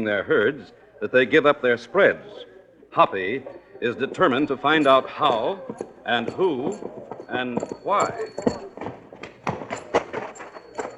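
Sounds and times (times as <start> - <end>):
speech: 0.0 - 8.8
horse hooves clip-clopping: 3.0 - 10.9.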